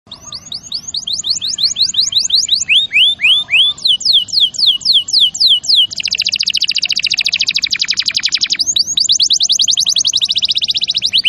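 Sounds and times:
champion canary song: 0.1 - 11.2.

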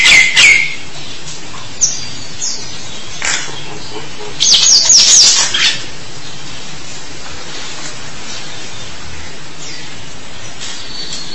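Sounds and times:
starling whistling song: 0.0 - 0.8, 1.8 - 5.9.

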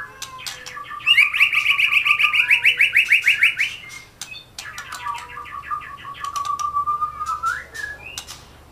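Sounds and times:
Oriental magpie-robin song: 0.0 - 8.5
sharp clicks and whistles: 0.4 - 8.4.

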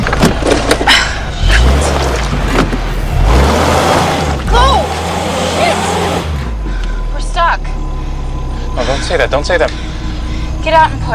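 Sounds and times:
car engine low steady rumble: 0.0 - 11.1
knocks and thumps of people jumping into car front seats: 2.0 - 3.0
speech: 9.2 - 9.8, 10.6 - 11.1.

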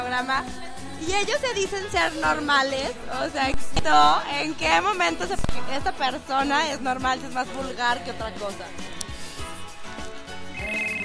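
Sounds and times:
speech: 0.2 - 9.0
telephone bell ringing for an incoming call: 10.6 - 11.0.

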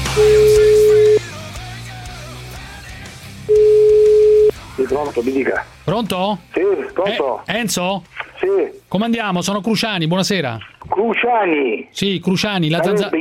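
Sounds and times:
telephone line ringing tone while calling a number: 0.2 - 1.2, 3.5 - 4.6
speech: 4.9 - 13.2.

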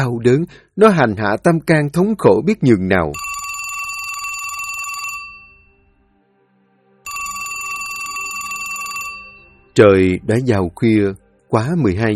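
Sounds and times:
speech: 0.0 - 3.3, 9.8 - 12.1
telephone ringing on a bedside table at night: 3.1 - 5.8, 7.1 - 9.7.

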